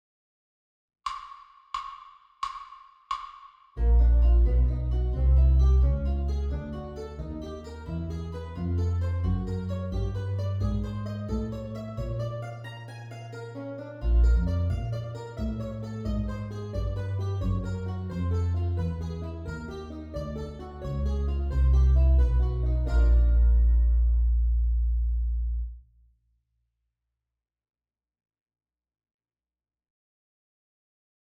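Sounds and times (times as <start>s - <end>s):
chromatic scale: 3.8s - 25.6s.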